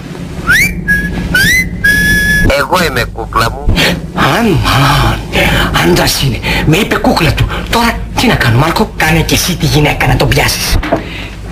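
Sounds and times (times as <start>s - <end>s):
low hum: 0.0s - 11.5s
person whistling into a telephone: 0.4s - 2.5s
speech: 2.5s - 11.5s.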